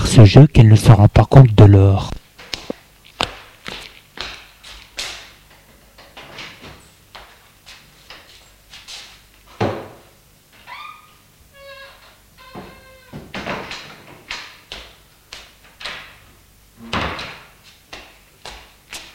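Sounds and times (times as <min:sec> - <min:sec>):
speech: 0:00.2 - 0:02.2
front door opening: 0:10.5 - 0:14.3.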